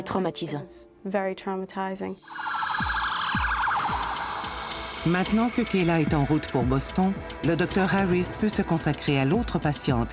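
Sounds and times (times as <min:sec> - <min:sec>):
speech: 0:00.0 - 0:03.0, 0:05.0 - 0:10.1
ambulance siren wailing: 0:02.2 - 0:06.4.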